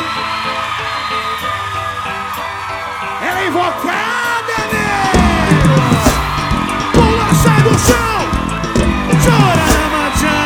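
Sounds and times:
crowd shouting and whooping: 0.0 - 10.4.

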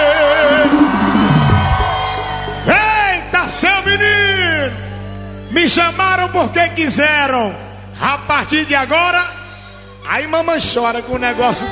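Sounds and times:
concert audience shouting and cheering at a DVD recording: 0.0 - 5.5
speech: 5.7 - 9.4, 10.1 - 11.7.

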